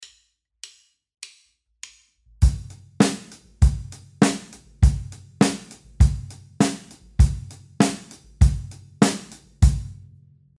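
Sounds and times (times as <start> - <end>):
drum kit playing a four-beat rhythm: 2.4 - 10.1.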